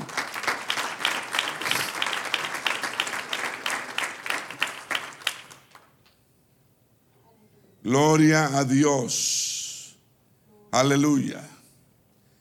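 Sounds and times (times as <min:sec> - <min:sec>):
audience applauding: 0:00.0 - 0:06.1
speech: 0:07.8 - 0:09.4, 0:10.8 - 0:11.6.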